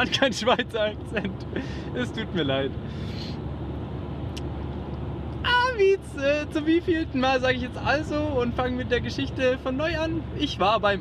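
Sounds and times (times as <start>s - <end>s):
speech: 0.0s - 3.2s, 5.8s - 10.9s
road traffic with deep engine rumble: 0.0s - 10.9s.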